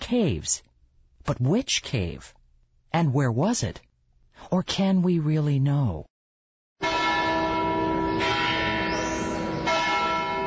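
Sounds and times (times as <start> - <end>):
speech: 0.1 - 6.1
church bells ringing: 6.8 - 10.4.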